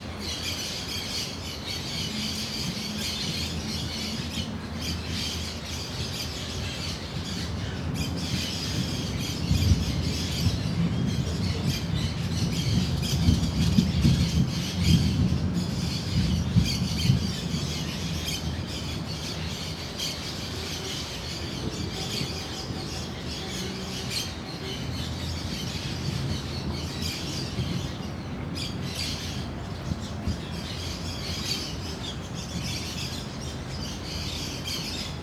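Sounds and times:
many birds chirping: 0.0 - 35.2
deep long rumble of thunder: 8.0 - 18.6.

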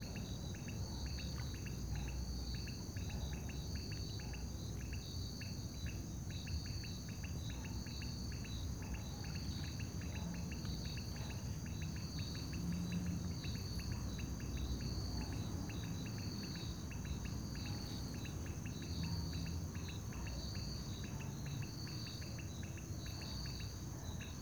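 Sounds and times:
crickets chirping at a lake at night: 0.0 - 24.4
traffic: 9.0 - 24.4.

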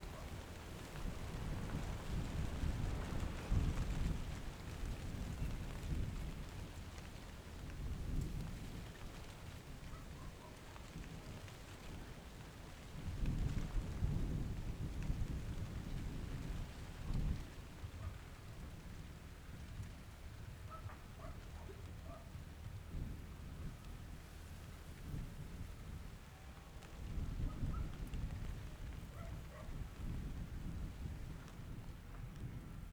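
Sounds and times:
rustling leaves: 0.0 - 32.9
wind in the trees in a backyard: 0.0 - 32.9
distant dog barking: 0.1 - 0.3, 20.7 - 22.4, 27.4 - 28.0, 29.1 - 29.8.

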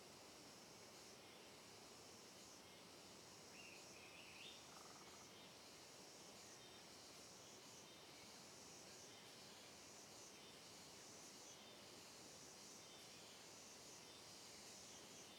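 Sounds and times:
chorus of cicadas buzzing on a trail in dense forest: 0.4 - 15.3.

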